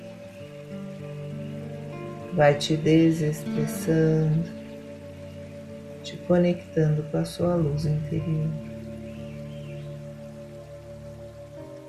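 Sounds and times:
soft sustained musical drone of low tones: 0.0 - 11.8
steady rainfall: 0.0 - 11.8
speech: 2.4 - 4.6, 6.1 - 8.7.

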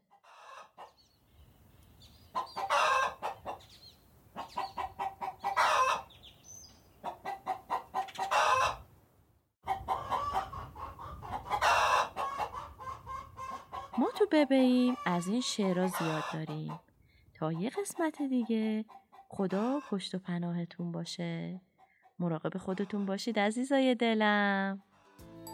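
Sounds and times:
hen clucking as it settles into its nest to lay eggs: 0.1 - 1.1, 2.1 - 8.9, 9.6 - 20.2, 21.7 - 23.3
speech: 14.3 - 24.9.

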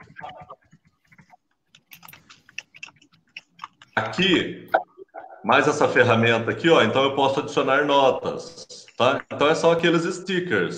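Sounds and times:
typing on a computer keyboard: 1.0 - 4.2
speech: 4.0 - 4.8, 5.4 - 10.7.

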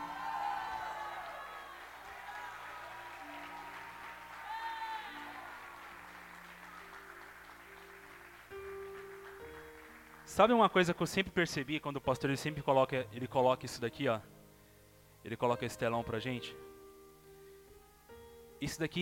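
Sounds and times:
high whoops: 0.0 - 5.9
large crowd at a night worship service shouting and cheering: 0.0 - 7.1
applause: 0.0 - 10.8
speech: 10.4 - 14.4, 15.2 - 16.7, 18.6 - 18.9.

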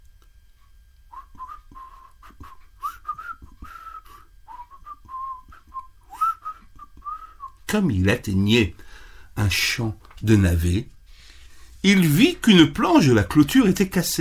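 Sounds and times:
man whistling a cheerful tune while driving goats: 1.1 - 7.6
speech: 7.7 - 10.9, 11.8 - 14.1.

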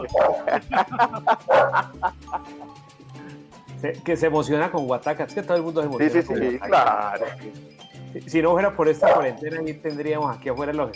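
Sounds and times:
speech: 0.0 - 10.9
laughter: 0.3 - 2.8
small female dog barking and yipping: 1.4 - 1.9, 9.0 - 9.3.

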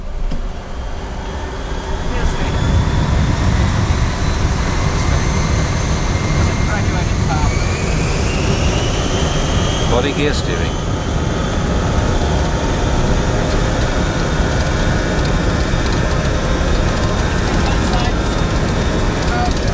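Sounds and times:
airliner jet engines roaring during takeoff: 0.0 - 19.7
speech: 10.2 - 10.7.

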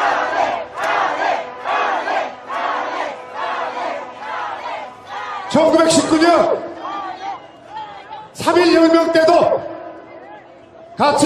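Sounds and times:
large rally crowd chanting a slogan in unison: 0.0 - 8.2
speech: 5.6 - 6.7, 8.4 - 9.7, 11.0 - 11.2.

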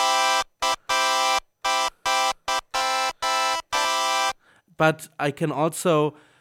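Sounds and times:
bright buzzy synthesizer tone with short instant attack: 0.0 - 4.4
speech: 4.8 - 6.3.

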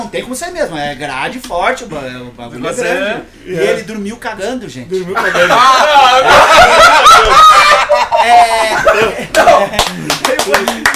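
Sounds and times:
speech: 0.0 - 10.9
laughter: 5.2 - 10.9
hand claps: 9.3 - 10.9.

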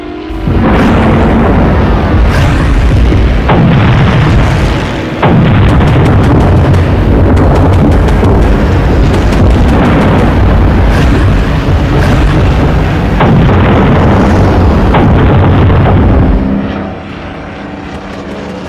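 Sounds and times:
dense roaring wall of noise: 0.0 - 18.6
bomb explosions and heavy booms in a naval air attack: 0.3 - 16.8.

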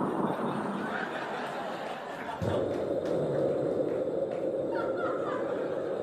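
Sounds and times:
chuckling: 0.1 - 3.5, 4.6 - 6.0
voice imitating airplane cabin drone: 4.5 - 6.0.

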